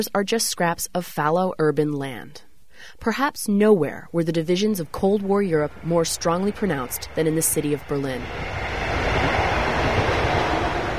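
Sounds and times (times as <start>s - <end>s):
speech: 0.0s - 8.9s
trains rushing along a former rail yard green space in southern Berlin: 4.6s - 10.9s.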